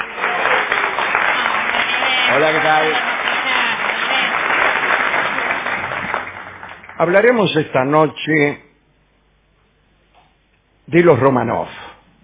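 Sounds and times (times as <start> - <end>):
audience ovation applause: 0.0 - 7.5
man greeting a crowd: 1.9 - 3.5
speech: 2.4 - 3.1, 7.0 - 8.6, 10.9 - 11.8.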